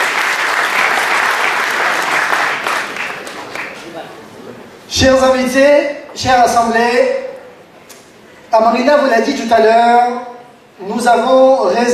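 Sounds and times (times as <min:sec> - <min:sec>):
audience applauding loudly: 0:00.0 - 0:04.0
speech: 0:05.0 - 0:07.2, 0:08.5 - 0:11.9.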